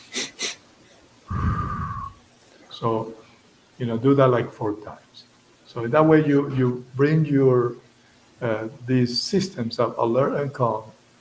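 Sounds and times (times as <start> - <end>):
short quick inhaled breaths as an energizing breathing exercise: 1.3 - 2.2
speech: 2.8 - 3.2, 3.8 - 7.8, 8.4 - 11.0.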